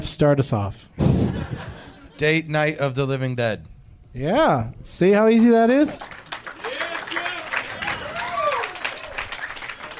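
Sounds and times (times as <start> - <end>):
speech: 0.0 - 6.2
laughter: 1.0 - 2.4
crowd applauding: 5.9 - 9.9
whoops and cheers: 6.6 - 9.9.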